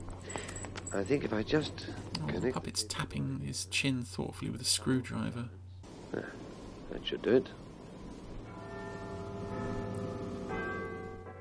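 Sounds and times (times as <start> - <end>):
speech: 0.9 - 7.6
doorbell ringing a chime: 8.5 - 11.4.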